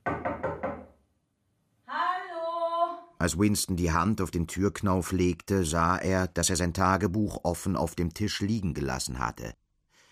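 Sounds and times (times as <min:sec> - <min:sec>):
solid knocks on an apartment door: 0:00.0 - 0:01.0
speech: 0:03.2 - 0:09.6.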